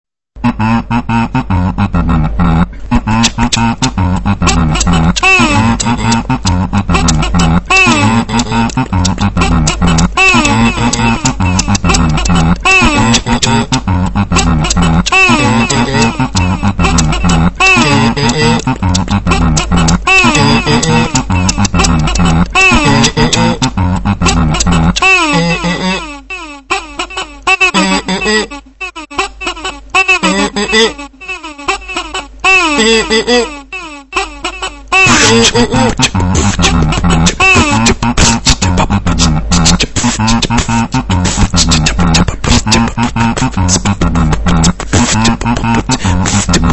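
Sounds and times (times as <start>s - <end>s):
laughter: 0.4s - 46.7s
kazoo: 2.2s - 46.7s.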